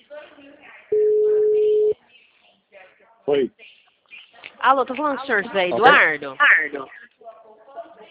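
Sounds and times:
phone ringback tone on a call waiting to be answered: 0:00.9 - 0:02.0
speech: 0:03.3 - 0:03.8, 0:04.6 - 0:07.1.

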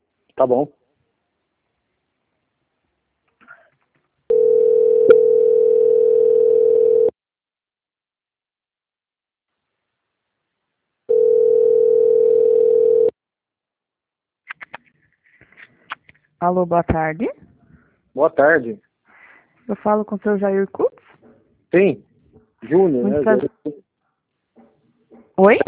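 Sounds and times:
speech: 0:00.4 - 0:00.8, 0:16.5 - 0:17.4, 0:18.2 - 0:18.9, 0:19.7 - 0:20.9, 0:21.7 - 0:23.8, 0:25.4 - 0:25.6
telephone line tones during a call transfer: 0:04.3 - 0:07.1, 0:11.1 - 0:13.1.

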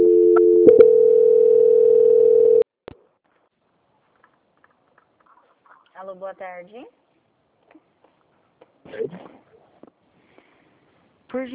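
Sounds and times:
telephone line tone during a call transfer: 0:00.0 - 0:02.7
speech: 0:06.1 - 0:07.0, 0:08.8 - 0:09.5, 0:11.3 - 0:11.5.

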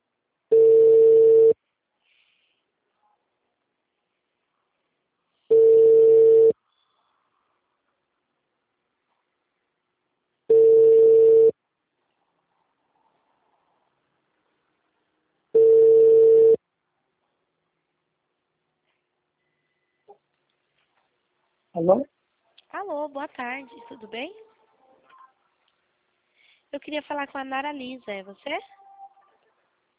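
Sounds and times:
telephone ringback tone while placing a call: 0:00.5 - 0:01.6, 0:05.5 - 0:06.6, 0:10.5 - 0:11.5, 0:15.6 - 0:16.6
speech: 0:21.8 - 0:22.1, 0:22.7 - 0:24.5, 0:26.7 - 0:28.8.

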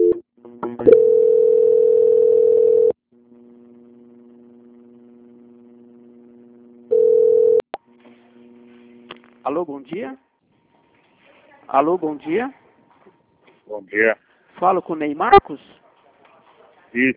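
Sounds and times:
telephone line tones during a call transfer: 0:00.8 - 0:03.0, 0:06.9 - 0:07.6
speech: 0:09.5 - 0:10.2, 0:11.7 - 0:12.6, 0:13.7 - 0:15.8, 0:16.9 - 0:17.1.

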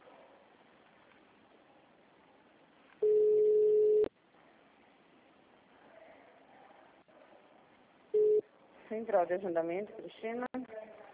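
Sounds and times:
telephone line tone during a call transfer to a hospital scheduling line: 0:03.0 - 0:04.1, 0:08.2 - 0:08.4
speech: 0:08.9 - 0:10.5.

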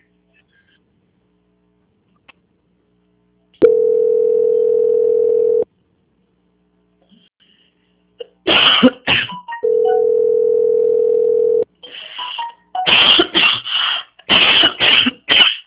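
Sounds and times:
phone tone: 0:03.6 - 0:05.7, 0:09.4 - 0:12.9
harsh allergic coughing: 0:08.2 - 0:09.4, 0:12.8 - 0:15.6.

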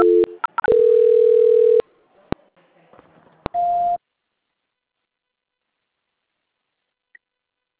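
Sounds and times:
telephone call transfer beeps and tones: 0:00.0 - 0:01.8.

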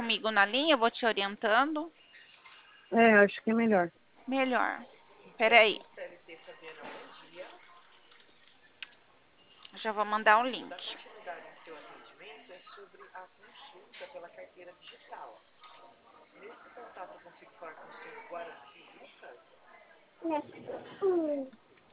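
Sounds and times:
speech: 0:00.1 - 0:02.0, 0:02.9 - 0:07.5, 0:09.8 - 0:11.8, 0:16.4 - 0:19.5, 0:20.2 - 0:21.6
baby babbling and cooing in a small room: 0:20.2 - 0:21.6.

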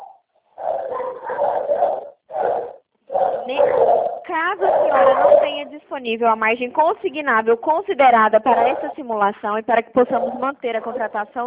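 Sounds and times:
dogs barking over a phone line: 0:00.0 - 0:05.7, 0:08.5 - 0:09.1, 0:10.0 - 0:11.3
speech: 0:04.4 - 0:11.4.

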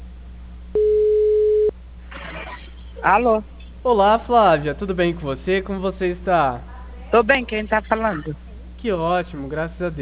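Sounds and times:
telephone ringing tone on an outgoing call: 0:00.8 - 0:01.7
speech: 0:03.0 - 0:10.0.

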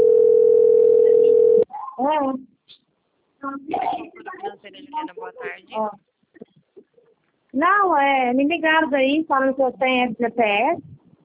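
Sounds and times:
steady telephone tone during an outgoing call: 0:00.0 - 0:01.6
speech: 0:03.4 - 0:06.1, 0:07.6 - 0:10.9.

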